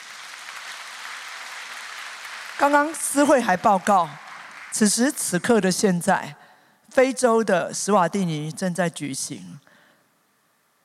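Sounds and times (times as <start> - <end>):
church congregation applauding: 0.0 - 5.9
speech: 2.6 - 9.7.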